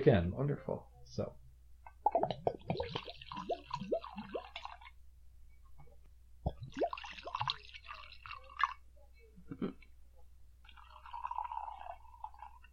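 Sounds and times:
speech: 0.0s - 1.4s
scotch whisky glugging and splashing into glasses: 2.3s - 5.0s, 6.5s - 8.8s, 10.7s - 12.7s.

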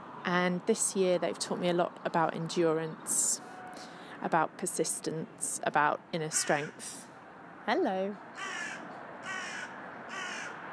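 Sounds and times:
faint hiss of outdoor noise: 0.0s - 10.7s
speech: 0.3s - 8.6s
crow cawing: 6.3s - 6.8s, 8.4s - 10.6s.

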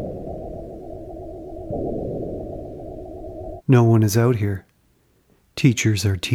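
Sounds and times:
industrial drone hum in empty school hallway: 0.0s - 3.6s
speech: 1.7s - 2.5s, 3.7s - 4.7s, 5.6s - 6.3s.

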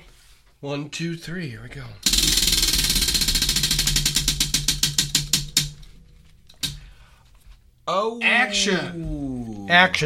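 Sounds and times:
speech: 0.6s - 2.6s, 7.9s - 10.0s
big prize wheel spinning and clicking: 2.0s - 5.9s.

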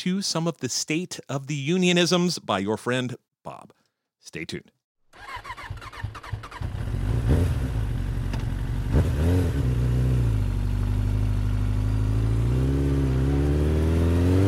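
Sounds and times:
speech: 0.0s - 5.8s
motorcycle engine revving: 5.2s - 14.4s.

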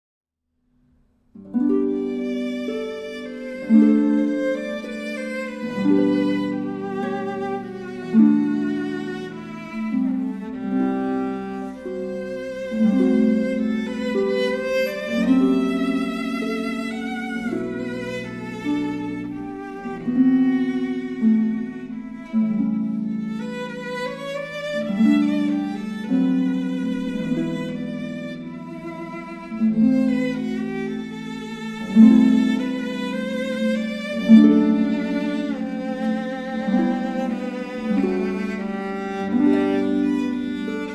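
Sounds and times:
harp: 1.3s - 40.9s
romantic violin music: 1.4s - 40.9s.

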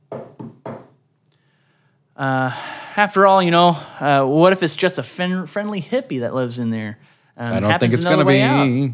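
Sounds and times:
heavy fists knocking on an RV door: 0.1s - 0.9s
speech: 2.2s - 8.9s.

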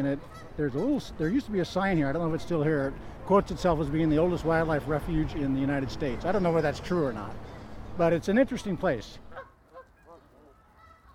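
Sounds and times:
speech: 0.0s - 9.2s
Canada geese honking: 0.2s - 1.7s, 9.3s - 11.1s.

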